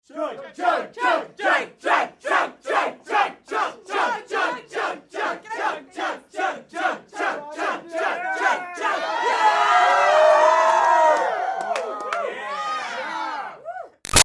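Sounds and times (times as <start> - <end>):
crowd of teens chanting chug: 0.1 - 9.9
crowd of teens cheering: 7.6 - 14.0.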